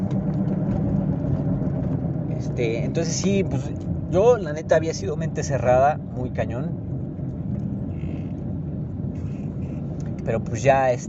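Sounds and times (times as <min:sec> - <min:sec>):
car engine running with a low rough rumble: 0:00.0 - 0:11.0
speech: 0:02.6 - 0:06.9, 0:10.3 - 0:11.0.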